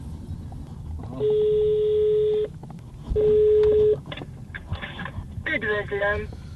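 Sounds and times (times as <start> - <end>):
low constant rumble: 0.0 - 6.5
telephone dialing beeps: 1.2 - 2.5, 3.2 - 4.0
telephone line ringing tone: 1.2 - 2.5, 3.2 - 4.0
speech: 5.9 - 6.4.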